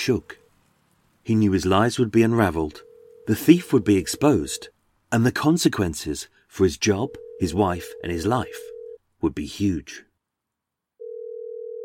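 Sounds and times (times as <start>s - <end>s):
speech: 0.0s - 0.4s, 1.2s - 10.1s
telephone dial tone while calling: 2.8s - 3.7s, 7.1s - 9.0s, 11.0s - 11.8s.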